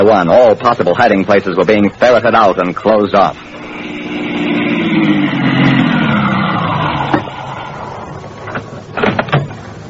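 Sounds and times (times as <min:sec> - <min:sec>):
speech: 0:00.0 - 0:03.6
car engine winding down to a stop: 0:03.3 - 0:09.8.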